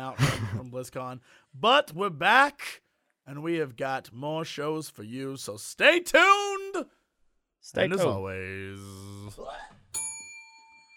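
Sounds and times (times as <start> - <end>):
speech: 0.1 - 7.0, 7.6 - 9.8
bell ding: 9.9 - 10.9.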